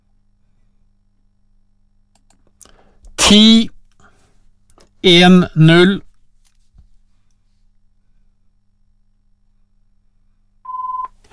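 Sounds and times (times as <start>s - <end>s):
speech: 3.3s - 3.7s, 5.0s - 6.1s
telephone tone beep: 10.7s - 11.2s.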